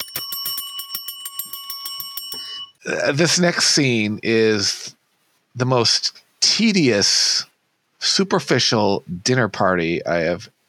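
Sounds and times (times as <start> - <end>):
bright bell ringing rapidly: 0.0 - 2.8
speech: 2.3 - 5.0, 5.6 - 10.5.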